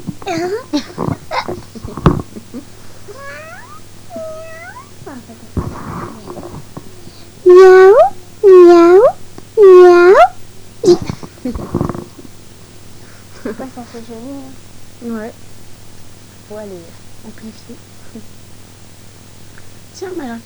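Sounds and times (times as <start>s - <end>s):
speech: 0.2s - 1.2s, 14.0s - 15.5s, 16.5s - 18.4s, 20.0s - 20.4s
cat meowing: 3.1s - 5.2s, 7.5s - 11.0s.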